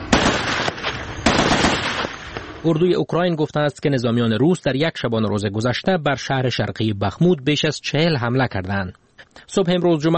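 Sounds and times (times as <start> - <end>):
gunfire from soldiers shooting in muddy trenches: 0.0 - 2.6
speech: 2.6 - 10.1.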